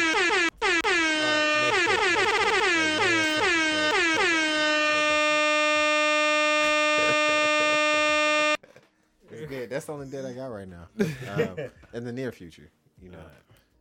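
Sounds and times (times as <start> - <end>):
loud blaring air horn blasts: 0.0 - 8.6
speech: 9.9 - 13.5
laughter: 11.0 - 11.8.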